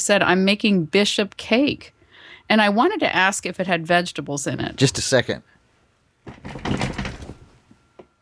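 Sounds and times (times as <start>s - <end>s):
speech: 0.0s - 5.6s, 6.2s - 6.8s
person falling off a chair: 6.2s - 7.7s.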